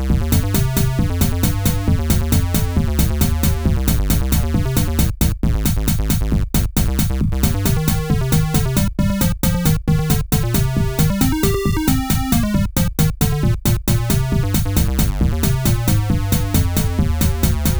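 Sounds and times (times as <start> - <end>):
chiptune music: 0.1 - 17.7.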